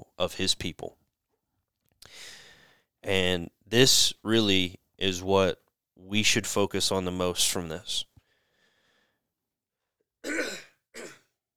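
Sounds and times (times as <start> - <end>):
speech: 0.2 - 1.0, 3.0 - 8.1, 10.2 - 11.1
throat clearing: 10.2 - 11.3.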